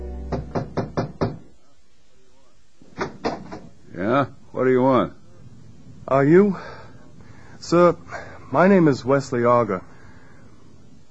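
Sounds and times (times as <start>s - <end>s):
firm knocks on a room door: 0.3s - 1.5s
speech: 4.0s - 5.2s, 6.2s - 6.8s, 7.6s - 9.9s.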